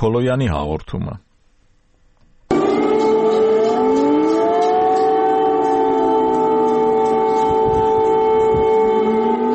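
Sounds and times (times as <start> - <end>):
speech: 0.0 - 1.3
air raid warning siren in Kyiv: 2.5 - 9.5.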